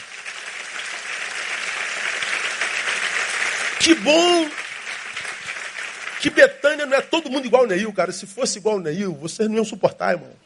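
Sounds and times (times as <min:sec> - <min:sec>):
sustained applause from a large crowd: 0:00.0 - 0:07.7
speech: 0:03.8 - 0:04.6, 0:06.2 - 0:10.4.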